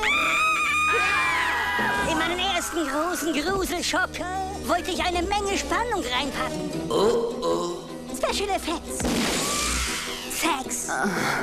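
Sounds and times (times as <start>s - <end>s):
shrill sustained scream from a horror film being shot: 0.0s - 3.0s
speech: 2.8s - 9.4s, 10.4s - 11.4s.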